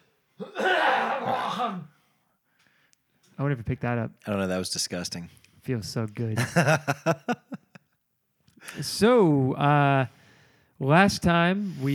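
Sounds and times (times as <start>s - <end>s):
harsh rasping hacking cough: 0.4s - 2.0s
speech: 3.4s - 7.5s, 8.7s - 10.2s, 10.8s - 11.9s
laughter: 6.4s - 7.8s.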